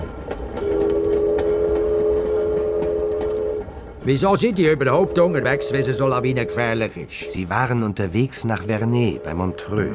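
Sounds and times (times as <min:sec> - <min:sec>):
train rolling heard from inside a carriage: 0:00.0 - 0:09.9
speech: 0:04.0 - 0:09.9.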